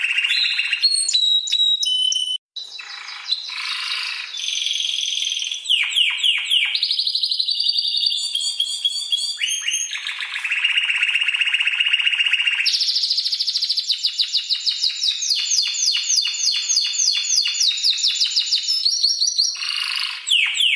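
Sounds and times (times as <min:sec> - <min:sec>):
canary singing: 0:00.0 - 0:20.7.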